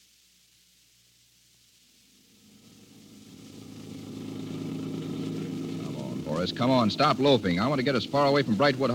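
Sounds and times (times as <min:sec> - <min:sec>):
car engine humming while driving: 0:02.6 - 0:08.9
speech: 0:06.4 - 0:08.9.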